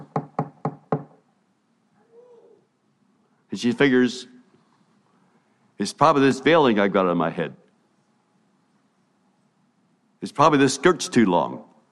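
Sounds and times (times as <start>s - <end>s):
knocking on a door: 0.0s - 1.2s
speech: 3.6s - 4.3s, 5.8s - 7.6s, 10.2s - 11.7s.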